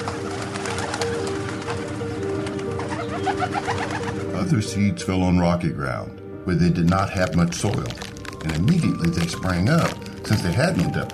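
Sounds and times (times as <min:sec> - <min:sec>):
crowd of birds calling and cooing: 0:00.0 - 0:04.6
speech: 0:03.4 - 0:11.1.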